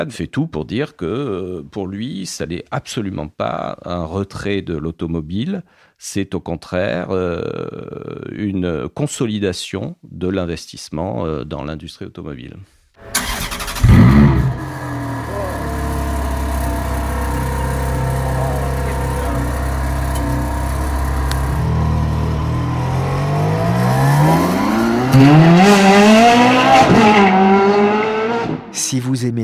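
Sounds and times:
speech: 0.0s - 13.2s, 28.9s - 29.4s
Ferrari Formula One racing car engine revving: 13.2s - 28.7s.

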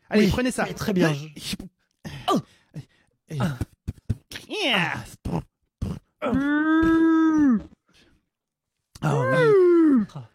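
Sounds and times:
speech: 0.1s - 1.7s, 3.3s - 3.7s, 4.6s - 5.2s, 6.2s - 7.7s
person imitating a long sustained low moo of a mole-cow: 5.0s - 7.8s, 9.0s - 10.3s
person imitating grunts of mole-cows being fed in a cellar: 5.0s - 7.8s
person imitating rising squeals of mole-cows: 6.2s - 7.8s, 9.0s - 10.3s.

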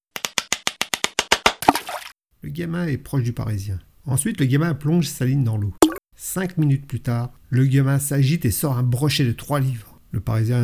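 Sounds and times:
ice crumbling into water: 1.6s - 2.1s
speech: 2.4s - 10.6s.

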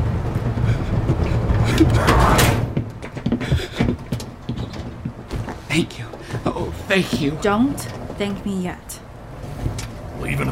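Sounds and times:
shuffling: 0.1s - 8.4s
door pulled shut with a scrape: 1.8s - 2.8s
speech: 5.8s - 6.0s, 6.9s - 9.0s, 10.3s - 10.5s.

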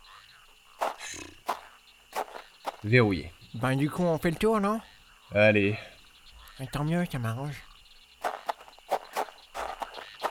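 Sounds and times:
speech: 2.8s - 5.9s, 6.6s - 7.7s
footsteps of people walking: 8.2s - 10.2s.

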